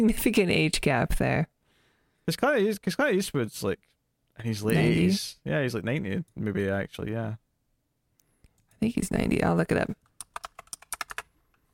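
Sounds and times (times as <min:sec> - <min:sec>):
speech: 0:00.0 - 0:01.5, 0:02.3 - 0:07.4, 0:08.8 - 0:10.0
typing on a loud mechanical keyboard: 0:10.0 - 0:11.3.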